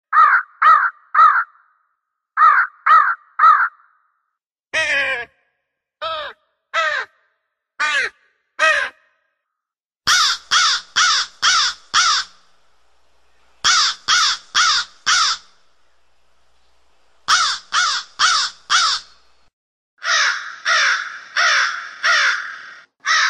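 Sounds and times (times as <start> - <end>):
crow cawing in short harsh bursts: 0.1 - 1.8, 2.4 - 4.1, 6.0 - 7.2, 7.8 - 9.1, 10.1 - 12.5, 13.6 - 15.6, 17.2 - 19.2, 20.0 - 23.2.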